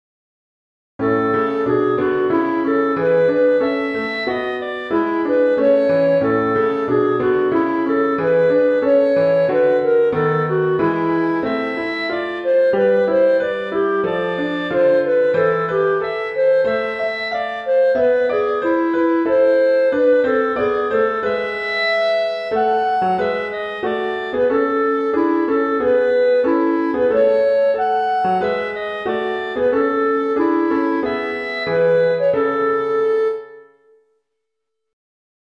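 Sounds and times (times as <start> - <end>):
piano: 1.0 - 34.3.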